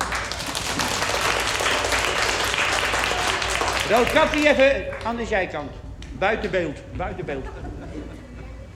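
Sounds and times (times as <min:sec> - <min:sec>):
loud sustained applause from a crowd: 0:00.0 - 0:05.6
speech: 0:03.9 - 0:08.2
laughter: 0:07.0 - 0:08.7.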